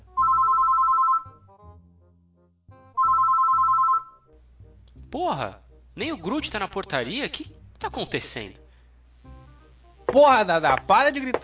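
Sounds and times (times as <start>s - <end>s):
telephone ring tone calling a building's front desk: 0.2s - 1.5s, 3.0s - 4.3s
speech: 5.1s - 8.6s, 10.1s - 11.4s.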